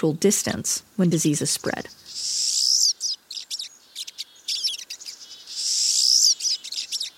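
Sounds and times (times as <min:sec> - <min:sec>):
speech: 0:00.0 - 0:02.4
flock of siskins calling: 0:01.2 - 0:07.1.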